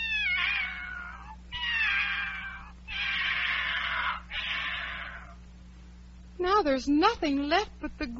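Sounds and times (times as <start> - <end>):
cat meowing: 0.0 - 5.4
faint steady hum: 0.0 - 8.1
speech: 6.5 - 8.1.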